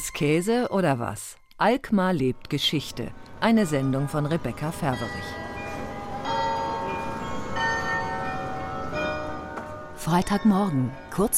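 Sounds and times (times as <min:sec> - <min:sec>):
speech: 0:00.1 - 0:05.4, 0:10.0 - 0:11.3
carillon bells played in the tower of the old weigh house in Alkmaar: 0:03.6 - 0:11.3.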